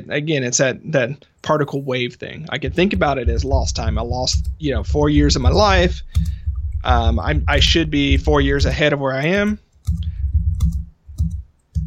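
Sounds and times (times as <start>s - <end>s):
speech: 0.0s - 10.8s
steady low rumble: 2.5s - 8.8s, 9.9s - 11.4s
computer keyboard clicks from typing: 4.2s - 6.8s, 9.4s - 11.8s.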